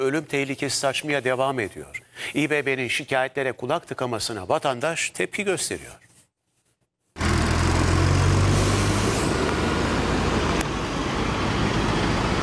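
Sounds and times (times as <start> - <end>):
speech: 0.0 - 6.0
road traffic of cars crossing a bridge: 7.2 - 12.4.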